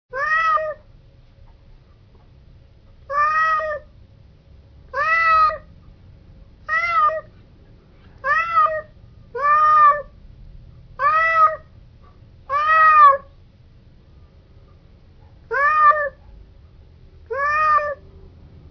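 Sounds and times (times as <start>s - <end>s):
cat meowing ringtone: 0.1s - 0.8s, 3.1s - 3.9s, 4.9s - 5.7s, 6.7s - 7.4s, 8.2s - 10.2s, 11.0s - 11.7s, 12.5s - 13.3s, 15.5s - 16.2s, 17.3s - 18.0s.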